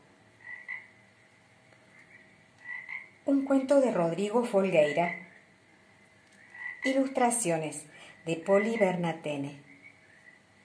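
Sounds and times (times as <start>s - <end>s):
toad croaking in paired chirpy calls: 0.4s - 1.0s, 1.9s - 3.4s, 4.7s - 5.4s, 6.4s - 7.3s, 8.2s - 10.4s
speech: 3.3s - 5.2s, 6.8s - 9.6s.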